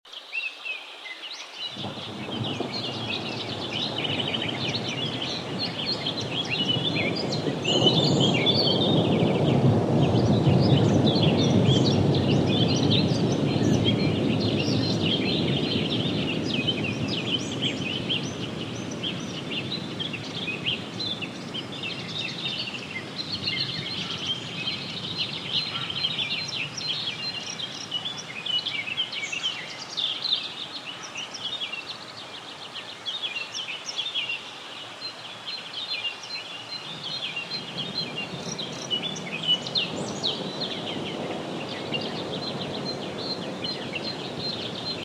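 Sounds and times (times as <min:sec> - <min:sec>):
thunderous rainforest ambience: 0:00.1 - 0:45.0
thunder rumbling in a rainforest: 0:01.7 - 0:28.6, 0:36.9 - 0:45.0.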